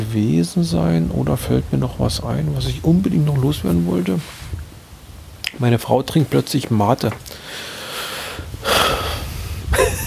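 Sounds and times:
speech: 0:00.1 - 0:04.5, 0:05.6 - 0:07.8
deep slow breathing: 0:07.2 - 0:09.8.

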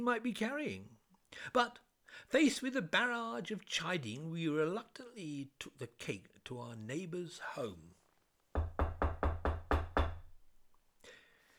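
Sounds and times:
speech: 0:00.0 - 0:08.0
firm knocking on a front door: 0:08.6 - 0:10.4.

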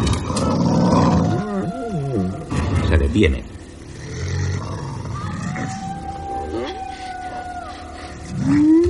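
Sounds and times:
long drawn-out howl: 0:00.2 - 0:02.6, 0:04.4 - 0:08.8
speech: 0:03.2 - 0:03.5.

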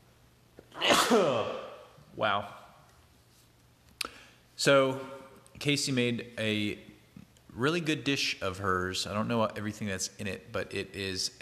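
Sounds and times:
single loud sneeze: 0:00.8 - 0:01.8
speech: 0:01.1 - 0:01.6, 0:02.2 - 0:02.6, 0:04.6 - 0:06.9, 0:07.6 - 0:11.4.

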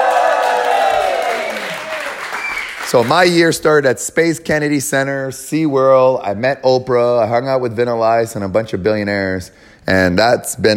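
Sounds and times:
roomful of people cheering with voiced whoops: 0:00.0 - 0:03.4
roomful of people applauding: 0:00.0 - 0:03.6
speech: 0:02.9 - 0:10.7.

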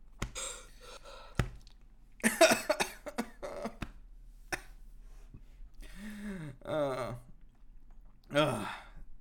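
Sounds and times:
gasping breaths: 0:00.2 - 0:01.5, 0:05.8 - 0:06.7
coughing fit: 0:02.2 - 0:03.9.

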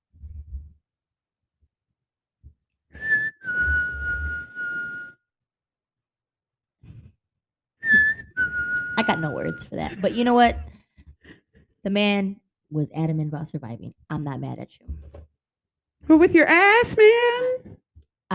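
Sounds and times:
person whistling for help: 0:02.9 - 0:05.2, 0:07.8 - 0:09.8
speech: 0:09.0 - 0:10.7, 0:11.8 - 0:15.3, 0:16.0 - 0:17.7
breathing: 0:10.8 - 0:11.7.

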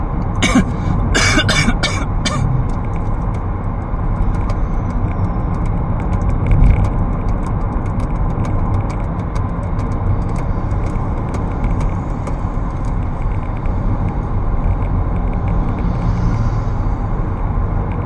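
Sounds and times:
steady low rumble of road traffic or a car interior: 0:00.0 - 0:18.0
sharp coughs: 0:00.4 - 0:02.6.

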